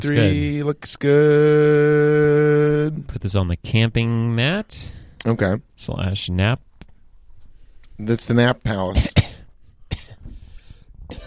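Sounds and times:
speech: 0:00.0 - 0:06.7, 0:08.0 - 0:09.2
harsh coughs: 0:09.0 - 0:10.3, 0:11.1 - 0:11.2.

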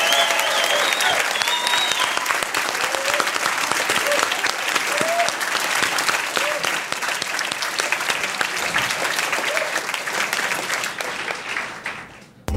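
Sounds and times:
scattered cheers and whoops: 0:00.0 - 0:05.4, 0:06.3 - 0:06.8
large crowd applauding in a packed room: 0:00.0 - 0:12.4.

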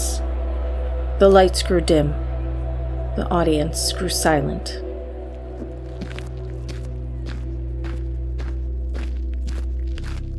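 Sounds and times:
low droning hum: 0:00.0 - 0:10.3
speech: 0:01.2 - 0:02.2, 0:03.2 - 0:04.8
boots walking across sand in a ring: 0:05.4 - 0:10.3.

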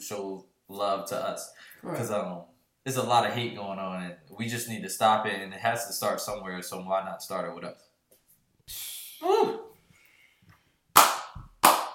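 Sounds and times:
speech: 0:00.0 - 0:07.9, 0:08.7 - 0:09.6
hand claps: 0:11.0 - 0:11.9.

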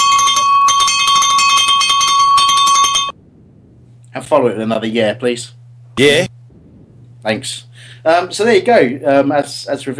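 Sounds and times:
bright electric bell ringing with rapid metallic trill: 0:00.0 - 0:03.2
speech: 0:04.3 - 0:06.4, 0:07.2 - 0:09.9.

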